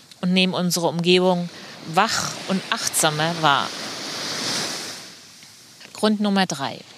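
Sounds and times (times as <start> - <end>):
speech: 0.2 - 3.8, 6.0 - 6.9
ocean waves rushing: 0.4 - 6.9.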